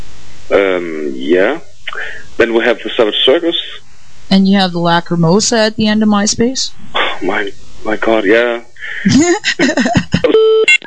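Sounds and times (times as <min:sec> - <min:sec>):
speech: 0:00.5 - 0:10.8
laughter: 0:08.8 - 0:10.3
phone beeping with an incoming call: 0:10.2 - 0:10.8.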